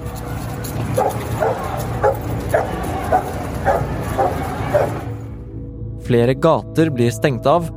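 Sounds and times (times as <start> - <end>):
police dogs barking: 0.0 - 5.4
murmur: 0.0 - 5.5
speech: 1.0 - 1.7, 6.1 - 7.7.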